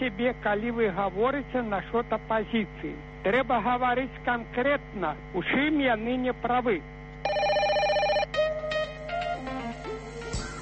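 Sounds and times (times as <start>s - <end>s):
speech: 0.0s - 7.0s
electronic telephone ringing: 7.2s - 8.7s.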